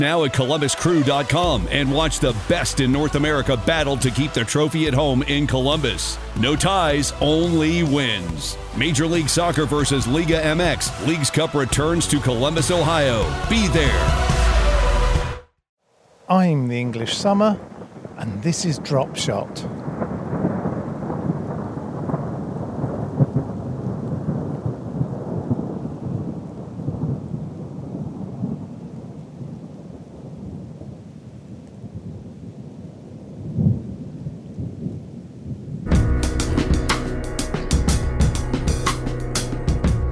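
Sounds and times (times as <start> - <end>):
heavy steady rain pouring down: 0.0 - 11.7, 15.9 - 40.1
speech: 0.0 - 14.4, 16.3 - 20.0
deep rolling thunder: 17.1 - 40.1.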